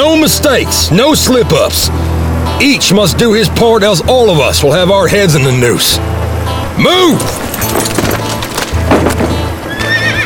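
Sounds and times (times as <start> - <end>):
speech: 0.1 - 6.2, 6.8 - 8.2
horses' hooves clip-clopping as riders move off with a wagon: 5.8 - 10.2
horse whinnying: 9.7 - 10.2.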